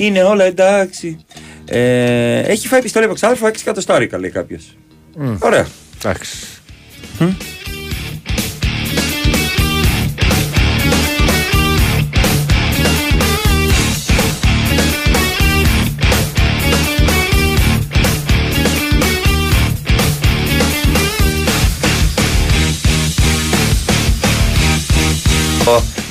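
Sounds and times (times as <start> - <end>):
speech: 0.0 - 6.5, 7.2 - 7.5, 25.7 - 26.0
song with steady driving beat and layered instrumentation: 6.6 - 26.0.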